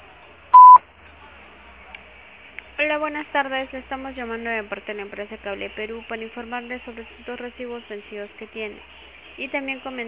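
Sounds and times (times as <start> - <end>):
voicemail beep before a message is recorded: 0.6 - 0.8
speech: 2.8 - 10.0.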